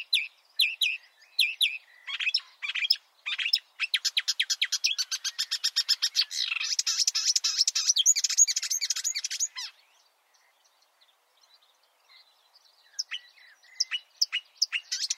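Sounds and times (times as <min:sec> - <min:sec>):
Marsh warbler singing: 0:00.0 - 0:15.1.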